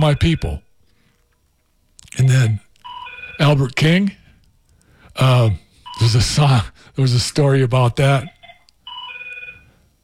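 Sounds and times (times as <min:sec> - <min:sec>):
speech: 0:00.0 - 0:00.6, 0:02.2 - 0:02.6, 0:03.4 - 0:04.2, 0:05.2 - 0:08.4
telephone ringing with a bright electronic tone: 0:00.0 - 0:00.6, 0:02.8 - 0:03.6, 0:08.3 - 0:09.8.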